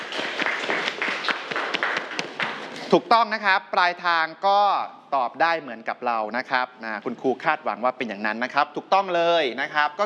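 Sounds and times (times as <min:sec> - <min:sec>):
students applauding in a classroom biology lesson: 0:00.0 - 0:02.9
speech: 0:02.9 - 0:10.0.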